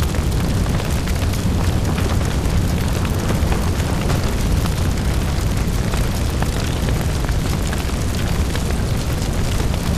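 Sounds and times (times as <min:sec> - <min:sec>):
big fire crackling: 0:00.0 - 0:09.9.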